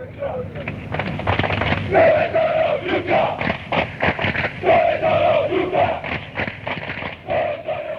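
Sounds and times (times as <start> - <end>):
large crowd of football fans chanting a stadium chant: 1.7 - 7.9
dense roar of voices: 1.9 - 3.6, 4.5 - 6.2, 7.2 - 7.9.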